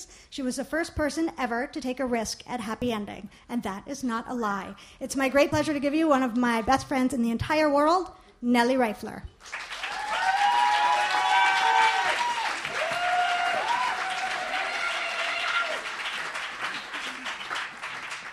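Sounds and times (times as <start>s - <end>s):
speech: 0.0s - 9.7s
audience applause at a club performance: 9.4s - 18.3s.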